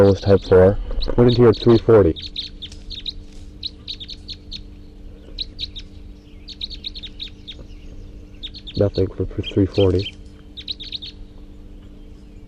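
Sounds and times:
speech: 0:00.0 - 0:02.5, 0:08.8 - 0:10.2
steady low hum: 0:00.0 - 0:12.4
wild birds chirping and calling: 0:00.0 - 0:12.4.

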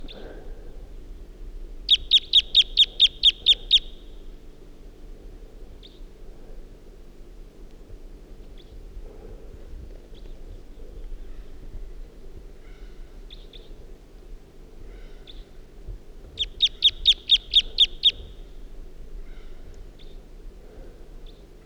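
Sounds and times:
wild bird giving type 2 calls and song at dawn: 0:01.9 - 0:04.1, 0:16.4 - 0:18.4.

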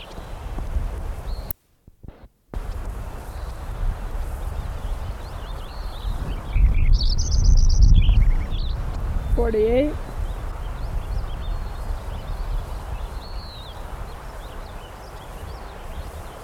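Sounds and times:
Lincoln's sparrow trilled song: 0:04.6 - 0:16.4
speech: 0:09.5 - 0:10.0.

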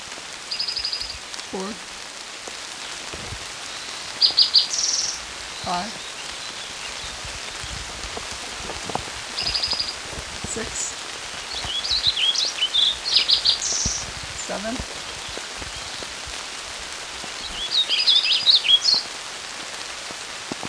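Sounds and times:
hard rain patter: 0:00.0 - 0:20.6
speech: 0:01.5 - 0:01.9, 0:05.7 - 0:06.0
warbling vireo singing beside a creek: 0:04.0 - 0:16.1.

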